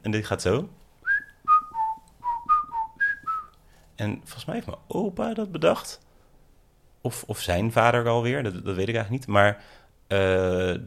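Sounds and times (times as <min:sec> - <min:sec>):
speech: 0:00.0 - 0:00.8, 0:04.0 - 0:06.0, 0:07.0 - 0:10.8
person whistling a family signal tune: 0:01.0 - 0:03.6.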